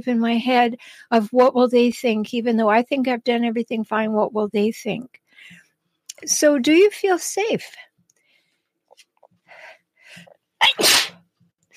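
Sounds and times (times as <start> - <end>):
speech: 0.0 - 5.6, 6.2 - 7.9, 10.1 - 11.1
person sneezing: 10.6 - 11.2.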